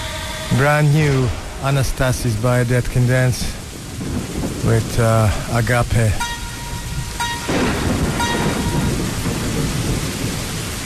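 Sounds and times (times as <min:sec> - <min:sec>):
deep rolling rumble of thunder: 0:00.0 - 0:10.8
steady rain hissing: 0:00.0 - 0:10.8
speech: 0:00.5 - 0:06.3
faint tonal ringing: 0:06.2 - 0:09.1.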